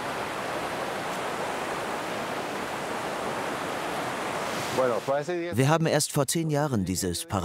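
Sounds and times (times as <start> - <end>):
waterfall rushing: 0.0 - 5.5
speech: 4.8 - 7.4.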